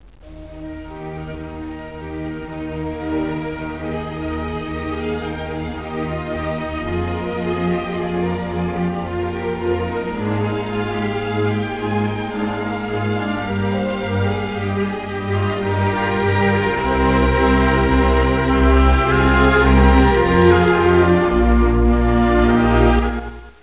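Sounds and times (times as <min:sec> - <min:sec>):
classical violin piece: 0:00.0 - 0:23.6.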